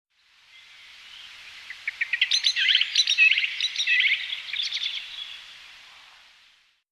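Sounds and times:
Eurasian blackbird Turdus merula calling with sharp high chirps and twitters: 0.5 - 5.5.

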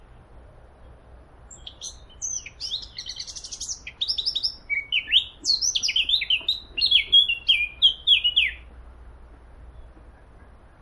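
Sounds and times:
Eurasian blackcap singing, Sylvia atricapilla: 1.5 - 8.7.

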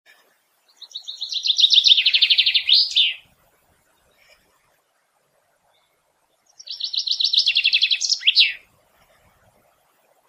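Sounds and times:
common chaffinch Fringilla coelebs song: 0.6 - 4.3, 5.6 - 9.3.

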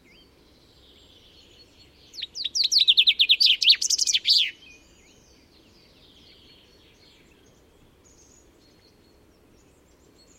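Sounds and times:
Common chaffinch Fringilla coelebs song: 0.0 - 10.3.

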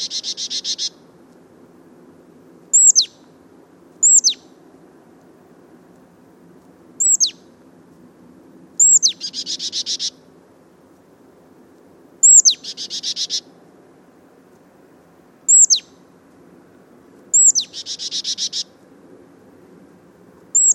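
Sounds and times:
marsh tit Poecile palustris calling: 0.0 - 1.0, 2.7 - 3.2, 4.0 - 4.5, 7.0 - 7.4, 8.8 - 10.2, 12.2 - 13.5, 15.5 - 16.0, 17.3 - 18.7, 20.5 - 20.7
low steady hum: 0.0 - 20.7.

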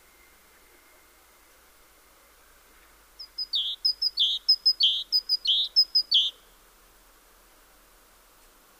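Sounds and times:
great tit song of paired notes: 3.2 - 6.4.

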